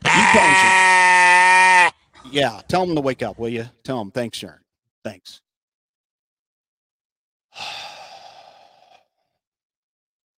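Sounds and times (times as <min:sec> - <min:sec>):
sheep bleating: 0:00.0 - 0:02.0
speech: 0:02.3 - 0:05.4, 0:07.6 - 0:07.9.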